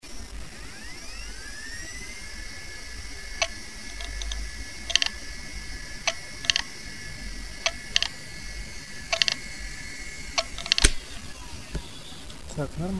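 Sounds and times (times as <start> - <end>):
Seagate U series hard drive knocking caused by a faulty magnetic head block: 3.2 - 11.9.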